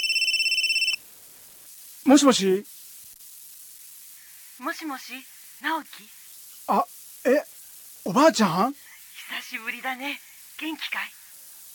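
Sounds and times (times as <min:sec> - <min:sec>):
mobile phone electronic ringtone: 0:00.0 - 0:01.0
speech: 0:02.0 - 0:02.9, 0:04.6 - 0:08.8, 0:09.5 - 0:11.2.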